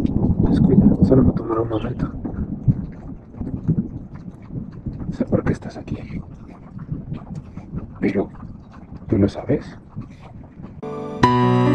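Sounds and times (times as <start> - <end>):
low rolling thunder: 0.0 - 6.0
speech: 0.7 - 2.3, 5.1 - 6.4, 8.0 - 8.4, 9.1 - 10.1.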